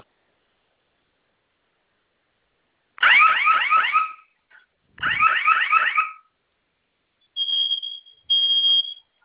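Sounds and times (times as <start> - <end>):
electronic security alarm panel sounding during a test: 3.0 - 4.4, 5.0 - 6.3, 7.3 - 9.2.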